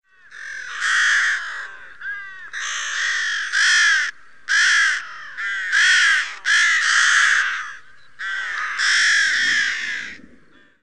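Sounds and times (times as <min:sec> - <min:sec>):
rook Corvus frugilegus giving harsh grating caws: 0:00.0 - 0:10.8.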